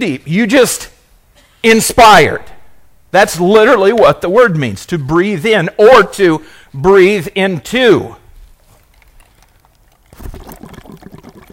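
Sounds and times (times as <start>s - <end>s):
speech: 0.0s - 1.0s, 1.6s - 2.5s, 3.1s - 8.2s
air blown through a straw into a glass of water: 8.7s - 11.5s.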